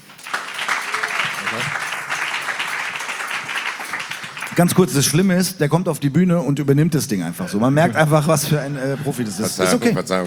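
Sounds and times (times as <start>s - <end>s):
crowd applause: 0.0s - 5.3s
faint crowd voices and cheers: 0.6s - 3.9s
speech: 4.6s - 10.2s.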